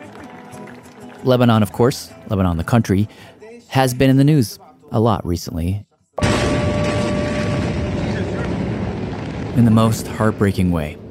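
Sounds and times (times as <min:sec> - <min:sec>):
speech: 0:01.2 - 0:05.9, 0:09.6 - 0:11.0
faint steady ringing tone: 0:06.2 - 0:08.4
enormous explosion in a city: 0:06.2 - 0:11.1.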